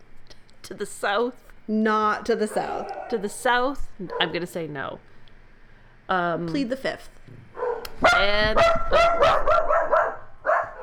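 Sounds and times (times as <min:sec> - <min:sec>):
speech: 0:00.7 - 0:05.1, 0:06.1 - 0:07.4, 0:08.0 - 0:09.6
dogs barking with high-pitched yips: 0:02.3 - 0:04.5, 0:07.5 - 0:10.8.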